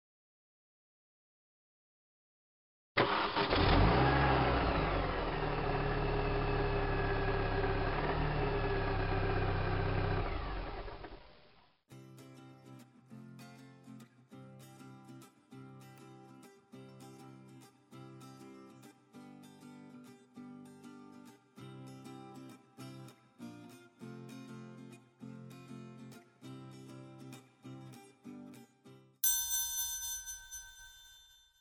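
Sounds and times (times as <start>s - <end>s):
car engine starting and running: 3.2s - 11.3s.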